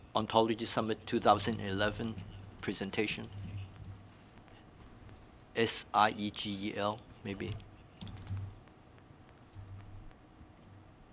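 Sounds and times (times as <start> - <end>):
low hum: 0.0 - 11.1
speech: 0.2 - 3.4, 5.6 - 7.7
typing on a computer keyboard: 7.1 - 10.2.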